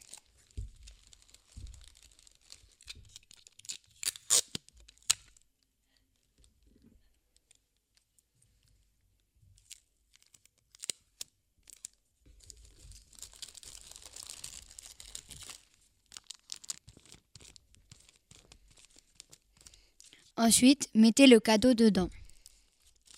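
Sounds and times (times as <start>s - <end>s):
wrapping paper crinkling around a toilet paper roll: 0.0s - 5.0s, 9.6s - 20.2s, 22.3s - 23.1s
sticky tape being pulled off: 3.6s - 5.3s
speech: 20.4s - 22.2s.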